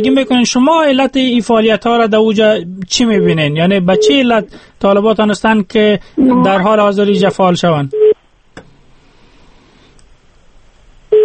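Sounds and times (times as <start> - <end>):
speech: 0.0 - 8.1
telephone busy tone: 6.2 - 6.6.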